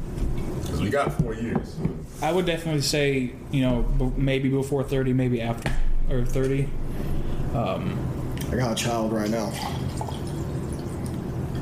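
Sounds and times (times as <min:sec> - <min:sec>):
speech: 0:00.9 - 0:09.8
alcohol being poured: 0:09.0 - 0:11.6.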